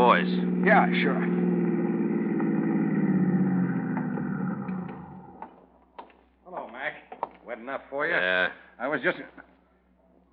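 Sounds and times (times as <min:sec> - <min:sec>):
car engine humming while pulling into a toll plaza: 0:00.0 - 0:06.0
speech: 0:00.2 - 0:01.4, 0:07.6 - 0:09.5.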